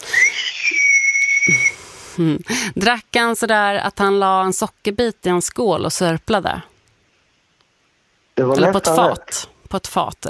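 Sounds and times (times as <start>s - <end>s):
coffee pot with a small spout whistling when coffee has boiled: 0.1s - 1.8s
speech: 2.2s - 6.7s, 8.4s - 10.2s.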